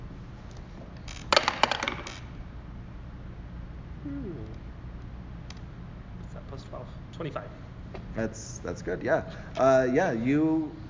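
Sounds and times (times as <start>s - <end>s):
dice clattering across a hard tabletop: 1.3s - 2.2s
speech: 4.0s - 4.6s, 6.7s - 10.8s.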